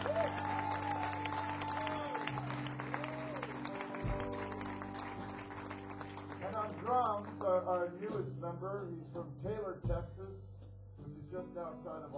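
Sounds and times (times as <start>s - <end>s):
audience clapping and cheering: 0.0s - 8.0s
low sustained musical drone: 0.0s - 9.1s
speech: 6.9s - 10.6s, 11.3s - 12.1s.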